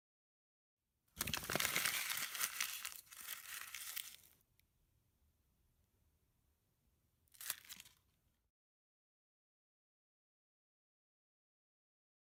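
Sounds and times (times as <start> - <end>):
paper crumpling: 1.2 - 4.4, 7.3 - 8.1.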